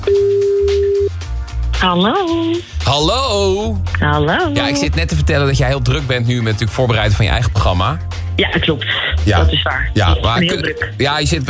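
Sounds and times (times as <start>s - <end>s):
telephone ringing tone while calling someone inside a building: 0.0s - 1.2s
speech: 1.8s - 11.4s.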